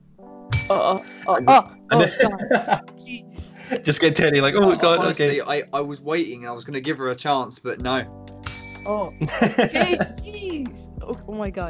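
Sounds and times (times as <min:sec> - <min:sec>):
speech: 0:00.2 - 0:11.6
bell ringing: 0:00.5 - 0:02.6, 0:08.4 - 0:10.5
laughter: 0:01.3 - 0:02.8, 0:03.6 - 0:08.0, 0:09.2 - 0:10.5.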